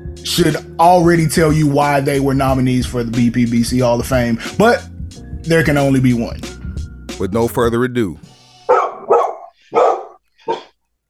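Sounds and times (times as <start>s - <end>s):
speech: 0.2s - 4.9s, 5.5s - 6.6s, 7.2s - 8.3s
dog barking: 8.7s - 11.0s.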